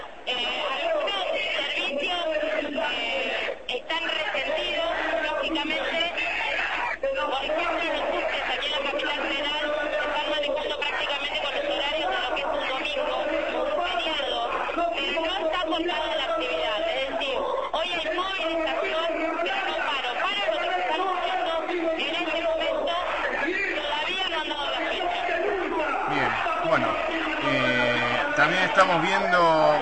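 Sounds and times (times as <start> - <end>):
large protest crowd shouting chants at a march: 0.0 - 29.8.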